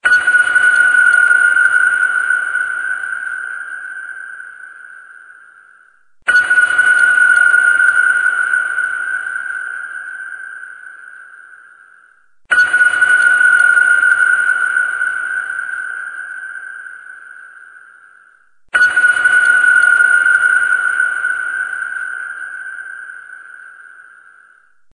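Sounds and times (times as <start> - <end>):
sonar ping: 0.0 - 24.9.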